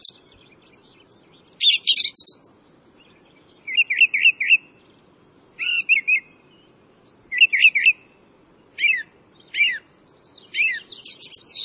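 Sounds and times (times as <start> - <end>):
bird singing twittering and warbled notes: 0.0 - 11.6
soft steady low hum: 0.0 - 11.6.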